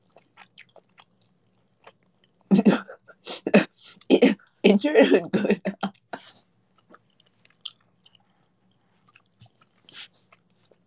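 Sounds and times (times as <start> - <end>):
wet chewing with crunchy bites: 0.0 - 2.5, 6.7 - 10.8
speech: 4.2 - 5.8.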